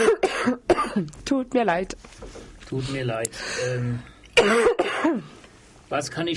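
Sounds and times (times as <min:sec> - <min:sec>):
person coughing from a nervous cough: 0:00.0 - 0:01.1, 0:04.4 - 0:05.3
speech: 0:01.0 - 0:06.3.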